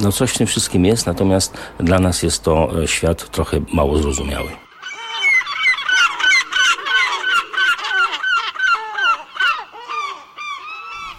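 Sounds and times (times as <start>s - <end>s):
speech: 0.0s - 4.6s
noisy flock of gulls screaming: 3.8s - 11.1s.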